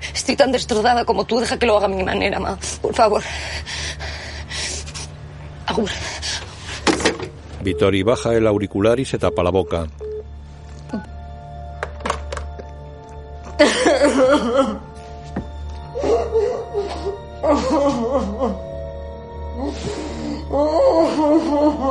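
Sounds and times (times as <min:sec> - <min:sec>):
speech: 0:00.3 - 0:03.8, 0:05.7 - 0:06.2, 0:07.6 - 0:10.0, 0:10.9 - 0:11.1
woman crying in a phone booth: 0:10.9 - 0:11.2, 0:13.5 - 0:15.0, 0:15.9 - 0:21.9.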